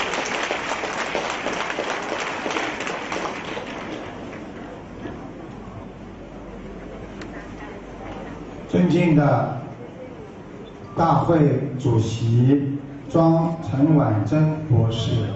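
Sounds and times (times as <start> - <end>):
audience applause at a Buddhist gathering's flower-presentation ceremony: 0.0 - 4.8
speech: 8.8 - 9.6, 11.0 - 15.3.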